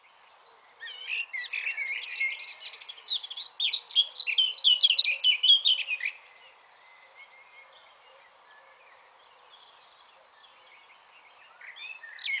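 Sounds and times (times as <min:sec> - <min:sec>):
Eurasian blackcap singing, Sylvia atricapilla: 0:00.8 - 0:06.4, 0:11.7 - 0:12.3.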